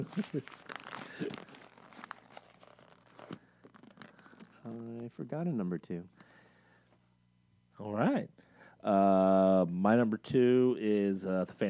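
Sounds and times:
speech: 0:00.0 - 0:01.6, 0:04.7 - 0:06.2, 0:07.8 - 0:11.6
paper rustling and crinkling as it is handled: 0:00.0 - 0:05.1.

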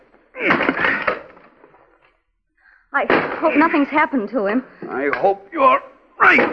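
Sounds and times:
axe breaking through panel of a locked wooden door: 0:00.4 - 0:01.4
speech: 0:02.9 - 0:06.5.

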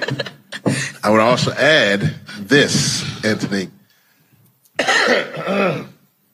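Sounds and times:
speech: 0:01.0 - 0:03.8, 0:05.1 - 0:05.9
raspy throat clearing: 0:04.8 - 0:06.0.

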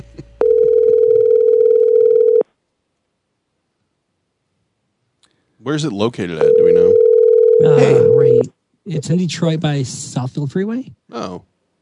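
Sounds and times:
steady electronic telephone ringing tone of an unanswered call: 0:00.4 - 0:02.4, 0:06.4 - 0:08.5
speech: 0:05.6 - 0:06.8, 0:07.6 - 0:11.5.

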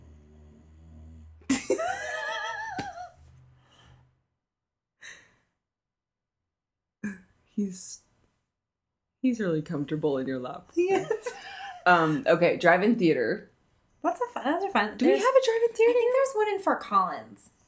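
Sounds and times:
pet snoring on a person's lap: 0:00.0 - 0:01.5
speech: 0:07.6 - 0:08.0, 0:09.2 - 0:17.6.

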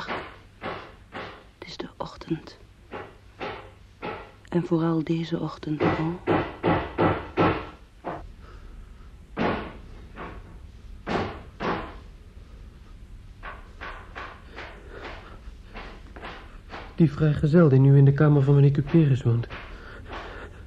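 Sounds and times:
neighbour hammering in another room: 0:00.0 - 0:01.5, 0:02.9 - 0:04.4, 0:05.6 - 0:08.3, 0:09.4 - 0:12.0, 0:13.4 - 0:20.6
speech: 0:01.8 - 0:02.6, 0:04.5 - 0:06.5, 0:17.0 - 0:19.6.

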